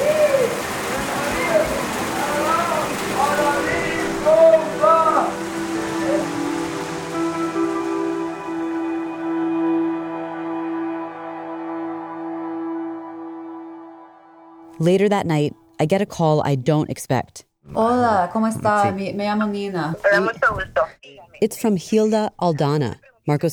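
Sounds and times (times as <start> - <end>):
heavy rain pouring: 0.0 - 10.2
sustained musical tones: 0.5 - 15.8
speech: 14.8 - 23.5.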